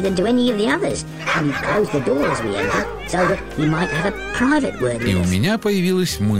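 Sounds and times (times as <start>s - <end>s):
speech: 0.0s - 6.3s
lovebird parrots imitating dog barks: 1.0s - 5.4s.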